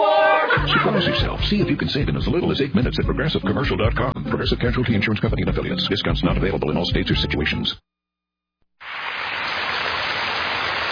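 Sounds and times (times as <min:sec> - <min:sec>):
laughter: 0:00.0 - 0:02.1
speech: 0:00.9 - 0:07.8
steady spring rain shower: 0:08.8 - 0:10.8.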